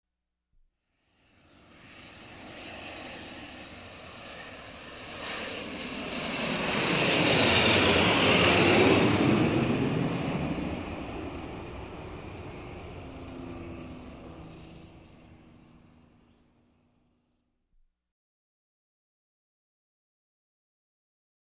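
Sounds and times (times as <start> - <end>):
aircraft approaching and flying over: 1.2 - 17.0.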